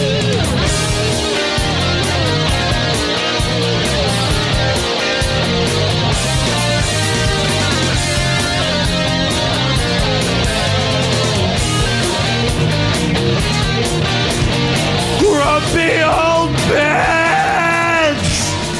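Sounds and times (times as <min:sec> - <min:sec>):
dense loud musical backing: 0:00.0 - 0:18.7
man yelling and screaming: 0:15.2 - 0:18.7.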